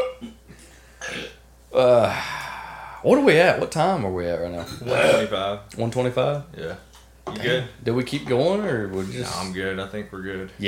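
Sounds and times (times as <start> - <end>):
person hiccuping after throwing an egg: 0.0 - 0.4, 1.0 - 2.0, 4.8 - 5.3
speech: 1.8 - 2.4, 3.0 - 10.6.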